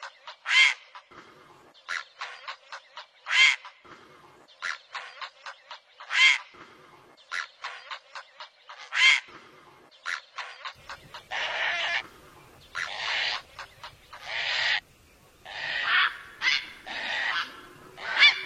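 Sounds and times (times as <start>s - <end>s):
great blue heron squawking: 1.9s - 3.8s, 4.6s - 6.5s, 7.3s - 9.3s, 10.0s - 12.1s, 12.7s - 14.8s, 15.4s - 18.4s.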